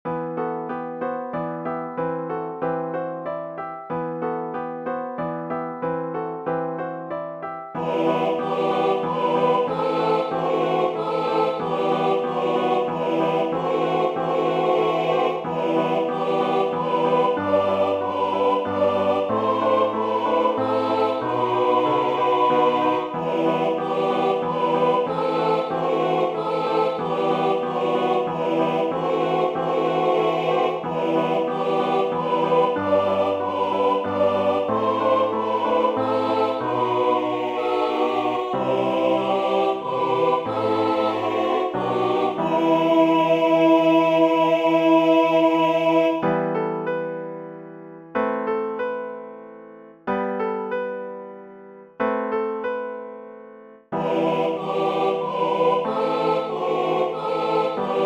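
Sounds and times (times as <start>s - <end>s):
piano: 0.0s - 58.0s
choir singing: 7.8s - 46.6s, 53.9s - 58.0s.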